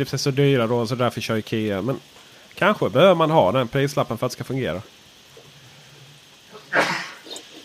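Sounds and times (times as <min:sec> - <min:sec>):
speech: 0:00.0 - 0:05.0
person sneezing: 0:06.5 - 0:07.6.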